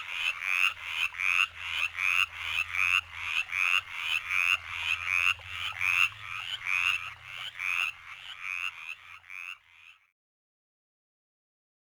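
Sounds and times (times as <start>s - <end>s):
Mountain chorus frog calling with raspy rattling trills: 0.0s - 10.1s.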